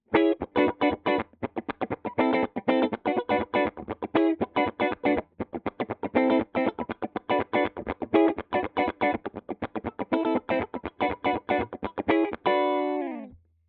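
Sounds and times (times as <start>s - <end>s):
clean middle funk music: 0.2s - 13.3s.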